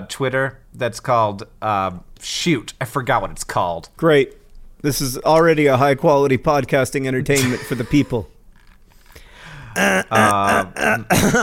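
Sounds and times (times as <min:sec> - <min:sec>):
speech: 0:00.0 - 0:08.3, 0:09.8 - 0:11.4
person forcefully clearing throat: 0:09.8 - 0:11.4.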